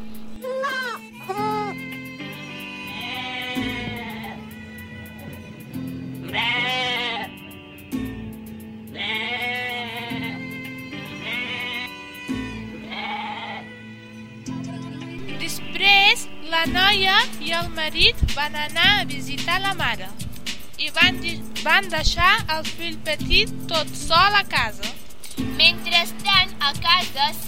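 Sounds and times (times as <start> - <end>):
low tonal background: 1.0 - 13.0, 13.7 - 27.4
lamb bleating: 2.8 - 5.6, 6.2 - 7.5, 8.9 - 13.8
speech: 17.5 - 20.2, 20.9 - 24.9, 25.6 - 27.4.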